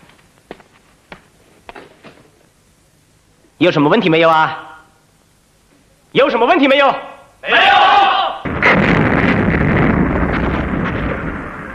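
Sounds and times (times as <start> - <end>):
speech: 3.6 - 4.7, 6.1 - 7.9
massed artillery barrage firing and shelling in battle: 7.5 - 11.7.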